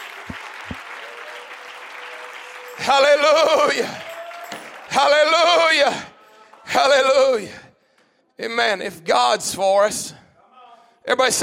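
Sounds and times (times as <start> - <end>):
crowd clapping hands in dense applause: 0.0 - 6.6
speech: 2.8 - 4.0, 5.0 - 6.1, 6.7 - 7.6, 8.4 - 10.2, 11.1 - 11.4.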